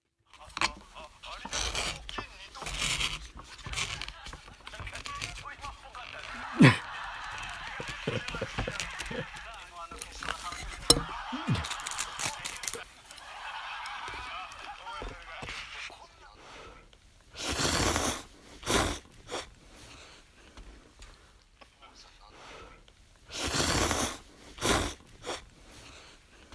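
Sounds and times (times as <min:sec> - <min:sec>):
comedy program playing on a TV: 0:00.2 - 0:26.5
person slurping year-crossing soba noodles on New Year's Eve: 0:01.4 - 0:04.0, 0:06.2 - 0:12.8, 0:17.4 - 0:19.5, 0:23.3 - 0:26.1
stifled laugh from the noodle eater: 0:06.0 - 0:15.5.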